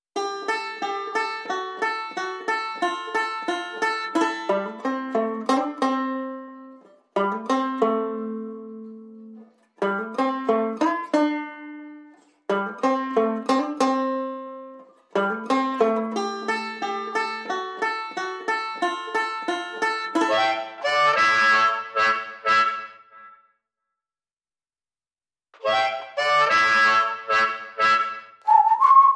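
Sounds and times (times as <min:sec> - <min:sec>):
banjo playing blues: 0:00.2 - 0:23.3, 0:25.6 - 0:29.1
harmonica: 0:20.2 - 0:23.4, 0:25.6 - 0:29.1
whistle: 0:28.4 - 0:29.1.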